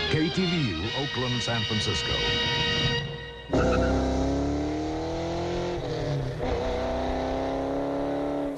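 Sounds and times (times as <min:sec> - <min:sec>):
speech: 0:00.1 - 0:02.7
car with intentionally loud exhaust system revving hard: 0:03.5 - 0:08.5.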